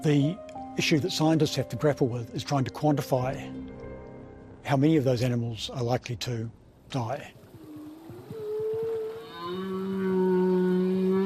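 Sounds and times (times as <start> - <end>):
speech: 0.0 - 3.7, 4.6 - 7.4
humpback whale song: 7.4 - 11.2.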